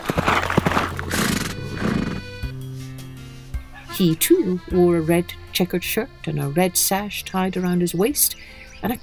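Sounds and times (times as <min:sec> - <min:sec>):
horse whinnying: 0:00.0 - 0:01.2
horse hoofbeats: 0:00.0 - 0:01.4
speech: 0:04.0 - 0:09.0.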